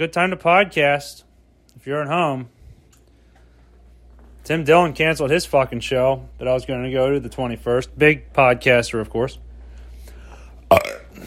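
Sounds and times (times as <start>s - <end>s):
speech: 0.0s - 2.6s, 4.4s - 9.4s, 10.7s - 11.2s
person burping: 10.7s - 11.2s.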